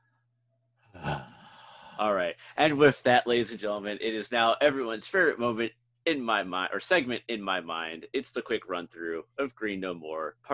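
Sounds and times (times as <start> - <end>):
deep breath: 0.8 - 2.6
speech: 2.0 - 10.5.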